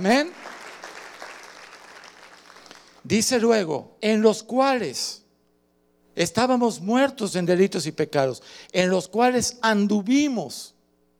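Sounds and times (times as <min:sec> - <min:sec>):
speech: 0:00.0 - 0:00.4, 0:03.0 - 0:05.2, 0:06.2 - 0:10.8
audience applauding: 0:00.1 - 0:03.0.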